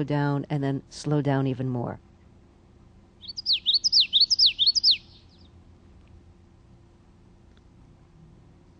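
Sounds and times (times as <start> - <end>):
speech: 0.0 - 2.1
Common Yellowthroat song: 3.2 - 5.6.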